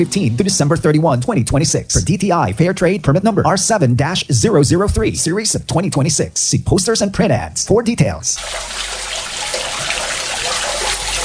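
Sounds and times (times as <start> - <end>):
speech: 0.0 - 9.0
water trickling and splashing into a drain: 8.4 - 11.2.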